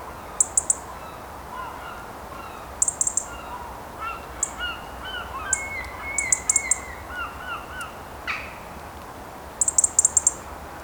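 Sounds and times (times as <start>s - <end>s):
steady low background hiss: 0.0s - 10.8s
European robin singing: 0.4s - 0.9s, 2.8s - 3.5s, 4.4s - 8.5s, 9.6s - 10.4s.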